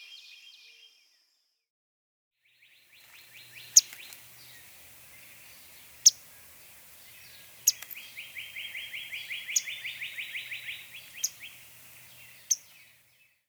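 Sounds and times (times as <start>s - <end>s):
yellow-throated warbler: 2.9s - 13.0s.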